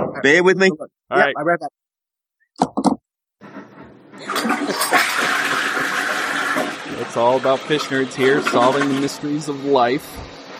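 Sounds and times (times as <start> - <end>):
speech: 0.2 - 1.8, 2.6 - 3.0, 4.2 - 5.4, 6.9 - 10.3
toilet flushing with a rush of water: 3.4 - 10.5.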